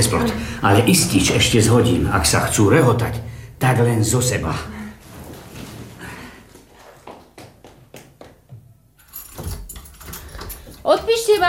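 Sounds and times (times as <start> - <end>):
speech: 0.0 - 4.8
small bunch of changing-room keys jangling: 9.0 - 11.4.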